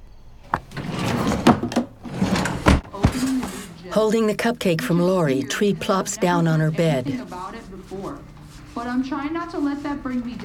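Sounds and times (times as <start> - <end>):
top drawer of a wooden dresser scraping open and sliding shut: 0.5 - 3.7
speech: 3.9 - 7.6, 8.8 - 10.4.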